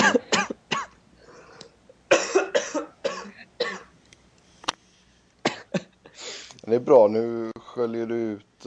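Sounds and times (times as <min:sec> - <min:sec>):
person coughing: 0:00.0 - 0:01.0, 0:02.1 - 0:03.9, 0:05.4 - 0:05.9
speech: 0:06.7 - 0:08.6.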